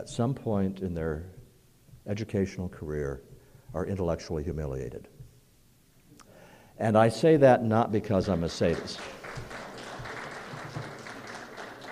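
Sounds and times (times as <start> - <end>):
speech: 0.0 - 1.4, 2.1 - 5.1, 6.8 - 9.6
young audience members clapping: 8.3 - 11.8.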